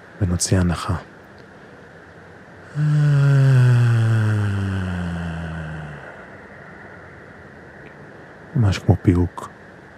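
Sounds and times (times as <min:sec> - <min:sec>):
speech: 0:00.2 - 0:01.1, 0:02.8 - 0:03.7, 0:08.6 - 0:09.6
long low humming exhale after a deep breath during a breathing exercise: 0:02.6 - 0:07.2.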